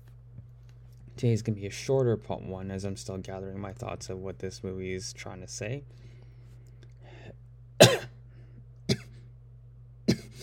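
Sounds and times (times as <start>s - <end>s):
steady low electrical hum: 0.0s - 10.4s
speech: 1.2s - 6.1s
person coughing: 7.8s - 8.2s, 8.9s - 9.2s, 10.0s - 10.4s.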